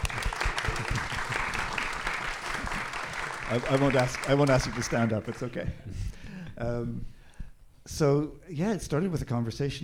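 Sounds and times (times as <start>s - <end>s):
audience applause at an evening poetry event: 0.0s - 5.6s
speech: 3.5s - 7.2s, 7.9s - 9.8s.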